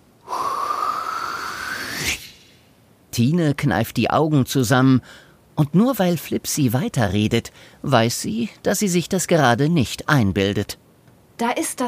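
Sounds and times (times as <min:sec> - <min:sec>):
loud exhale: 0:00.2 - 0:02.6
speech: 0:03.2 - 0:10.8, 0:11.4 - 0:11.8.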